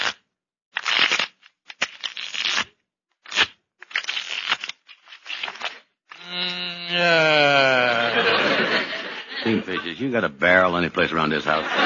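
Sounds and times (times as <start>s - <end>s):
playing cards shuffled for a card game: 0.8s - 6.2s
laughter: 6.8s - 10.3s, 11.2s - 11.8s
speech: 9.5s - 11.8s.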